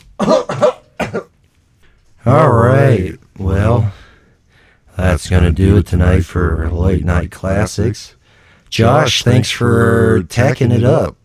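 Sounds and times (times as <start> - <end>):
person clearing throat: 0.2 - 1.4
speech: 2.2 - 3.2, 5.2 - 11.2.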